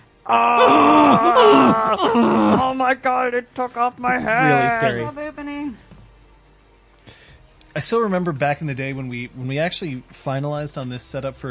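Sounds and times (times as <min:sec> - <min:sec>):
speech: 0:00.2 - 0:05.9, 0:07.7 - 0:11.4
loud deep raspy demonic goat groan: 0:00.3 - 0:02.8.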